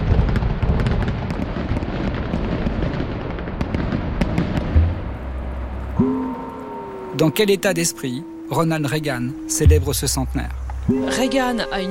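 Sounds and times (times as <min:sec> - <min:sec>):
fireworks display at New York centennial festivities crackling and banging: 0:00.0 - 0:06.2
low rumble: 0:04.7 - 0:07.1, 0:09.6 - 0:11.1
speech: 0:07.2 - 0:11.8.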